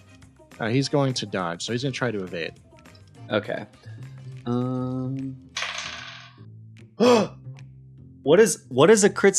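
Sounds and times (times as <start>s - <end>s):
speech: 0.6s - 2.6s, 3.3s - 5.4s, 7.0s - 7.4s, 8.2s - 9.3s
drawn-out hummed vocal sound: 3.9s - 5.4s, 7.0s - 7.4s
dice rattling across a table in a tabletop game: 5.6s - 6.3s
short exclaimed vocal burst: 7.0s - 7.3s.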